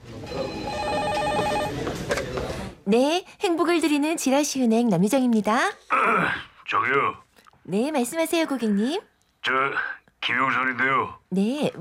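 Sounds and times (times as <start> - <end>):
electronic telephone ringing in a bank office: 0.2 - 1.9
speech: 2.9 - 11.8.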